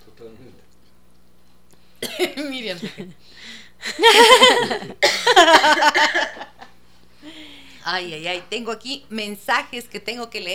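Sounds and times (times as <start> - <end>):
coughing: 2.0 - 3.1, 3.8 - 6.5
laughter: 2.2 - 3.2, 3.8 - 6.7
speech: 2.2 - 6.5, 7.9 - 10.5.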